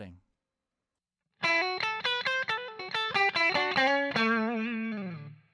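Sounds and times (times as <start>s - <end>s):
clean electric guitar on middle pickup: 1.4s - 5.5s.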